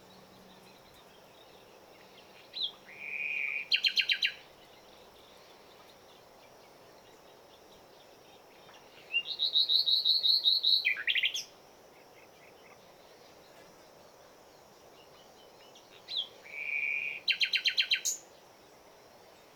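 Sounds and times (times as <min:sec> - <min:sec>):
common nightingale Luscinia megarhynchos song: 0:00.0 - 0:05.3, 0:08.4 - 0:12.6, 0:14.9 - 0:18.3.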